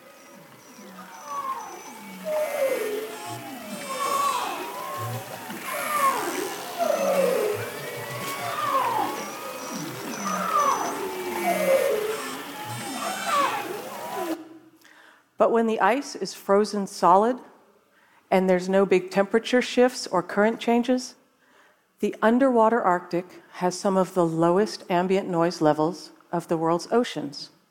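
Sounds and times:
Arctic marine mammals calling underwater in spring: 0.0 - 14.4
speech: 15.4 - 17.5, 18.3 - 21.2, 22.0 - 27.6.

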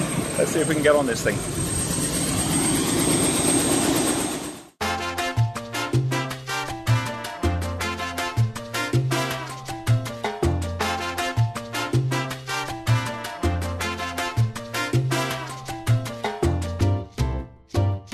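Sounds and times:
helicopter carrying passengers with rotor roar and turbine whine: 0.0 - 4.8
speech: 0.4 - 1.7
upbeat music with a pulsing bass line: 4.8 - 18.1.

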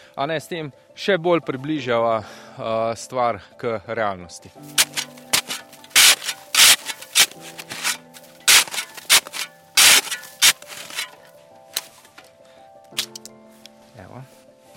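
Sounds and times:
speech: 0.2 - 5.1
saw with a 25 cm blade rasping through a block of snow: 4.7 - 11.2.

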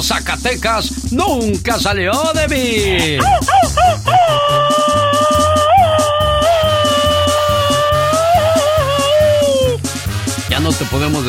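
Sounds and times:
speech: 0.0 - 5.0, 10.6 - 11.2
steady bouncy musical accompaniment: 0.0 - 11.2
laughter: 2.8 - 9.8
high-pitched Mexican grito yell: 3.0 - 9.8.

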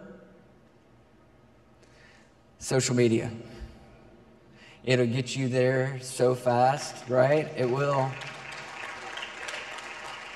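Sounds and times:
speech: 2.6 - 3.6, 4.8 - 8.4
audience applauding: 7.2 - 10.3.

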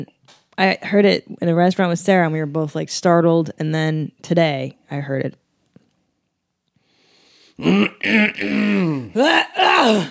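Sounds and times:
speech: 0.0 - 5.4, 7.6 - 10.1
throat clearing: 7.6 - 10.1.

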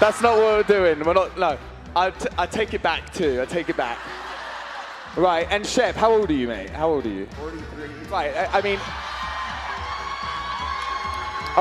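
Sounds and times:
speech: 0.1 - 4.2, 5.2 - 9.1
live crowd cheering and whooping: 3.5 - 5.2, 8.5 - 11.6.

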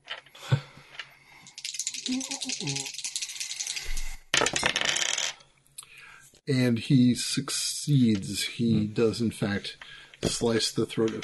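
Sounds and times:
dice rattling across a table during a tabletop role-playing game: 1.4 - 5.4
speech: 2.1 - 3.0, 6.4 - 11.2.

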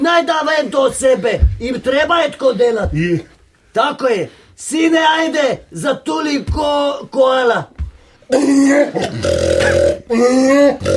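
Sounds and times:
speech: 0.0 - 10.9
loud burp: 8.3 - 10.9.

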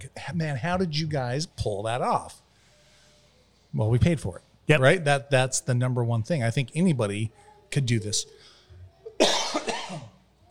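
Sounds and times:
speech: 0.0 - 2.4, 3.7 - 8.5
person coughing harshly: 9.1 - 10.2.

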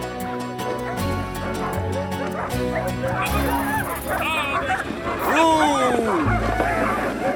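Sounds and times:
sled dog team barking and yipping in falling snow: 0.1 - 7.3
voices murmuring: 1.5 - 7.3.

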